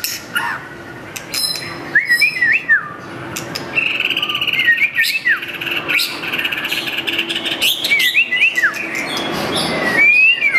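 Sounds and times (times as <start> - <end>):
white-rumped shama singing looping whistled slurs and chirps: 1.2 - 10.5.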